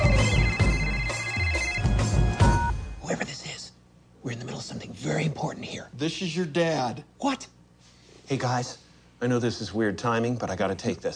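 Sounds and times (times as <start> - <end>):
telephone ringing during an outgoing call: 0.0 - 3.0
speech: 4.2 - 7.6, 8.3 - 11.1.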